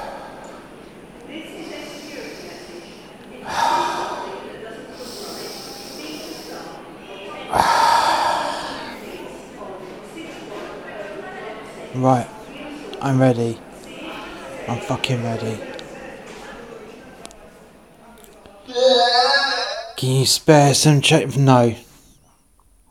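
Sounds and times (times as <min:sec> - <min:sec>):
deep sharp breaths drawn in: 0:00.0 - 0:06.8, 0:07.5 - 0:09.4
steady noise: 0:00.0 - 0:22.8
speech: 0:12.0 - 0:12.3, 0:13.0 - 0:13.7, 0:14.7 - 0:15.7, 0:20.0 - 0:21.8.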